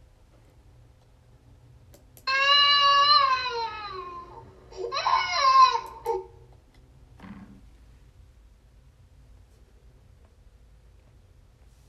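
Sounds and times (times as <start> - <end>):
child crying in long loud wails: 2.3 - 6.4.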